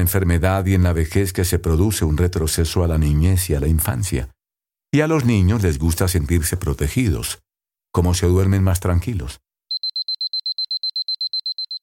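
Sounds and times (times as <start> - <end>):
speech: 0.0 - 9.4
alarm clock ringing with high-pitched electronic beeps: 9.7 - 11.8.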